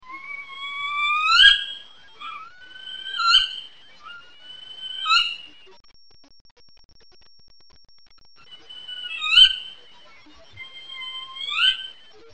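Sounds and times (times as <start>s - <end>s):
spotted owl whistled calls in northwestern California: 0.0s - 5.6s, 8.5s - 9.8s, 10.6s - 12.1s.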